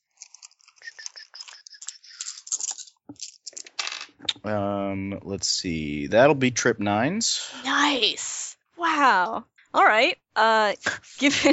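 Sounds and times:
dice rattling and clattering: 0.2s - 4.2s
speech: 4.4s - 8.3s, 8.9s - 11.5s.

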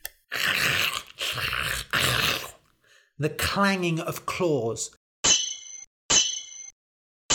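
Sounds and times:
monsters growling and roaring over a city: 0.3s - 2.6s
speech: 3.2s - 5.0s.

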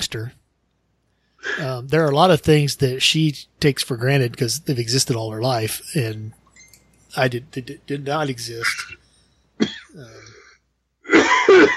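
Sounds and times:
speech: 0.0s - 0.4s, 1.5s - 6.4s, 7.1s - 9.0s, 10.0s - 10.4s
person coughing: 9.6s - 10.4s, 11.0s - 11.7s.

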